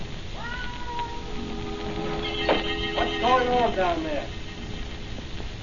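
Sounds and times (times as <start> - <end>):
cat yowling: 0.3 - 3.7
speech: 3.6 - 4.3.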